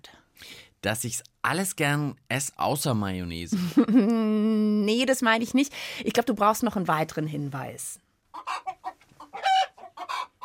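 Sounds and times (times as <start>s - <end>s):
speech: 0.8s - 8.0s
chickens clucking: 8.3s - 10.4s.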